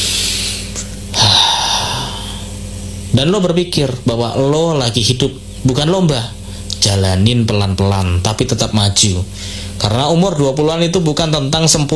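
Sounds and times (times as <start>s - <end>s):
long airy breath drawn in: 0.0s - 2.6s
speech: 3.1s - 11.9s.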